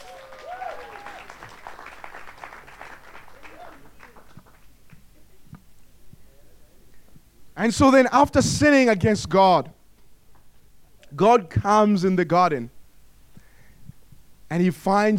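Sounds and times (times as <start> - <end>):
person whooping: 0.0 - 1.5, 3.4 - 3.9
audience applause: 0.0 - 4.8
speech: 7.6 - 9.8, 11.2 - 12.8, 14.5 - 15.1.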